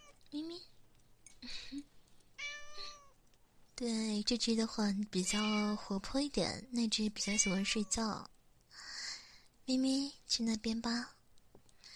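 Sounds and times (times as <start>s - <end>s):
speech: 0.3s - 0.7s, 3.8s - 8.4s, 9.7s - 11.2s
pet cat meowing: 2.4s - 3.2s, 5.3s - 5.8s, 7.2s - 8.0s.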